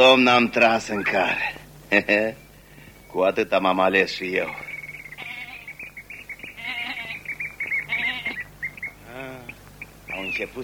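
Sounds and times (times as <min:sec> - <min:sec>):
speech: 0:00.0 - 0:02.4, 0:03.1 - 0:04.7, 0:10.2 - 0:10.6
birds chirping: 0:00.0 - 0:10.6
goat bleating: 0:04.4 - 0:05.8, 0:06.5 - 0:09.6.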